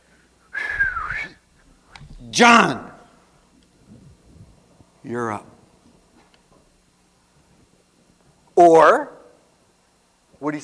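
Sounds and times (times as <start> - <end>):
short breathy whistle by a person: 0.5 - 1.4
speech: 2.3 - 2.9, 5.1 - 5.5, 8.6 - 9.2, 10.4 - 10.6.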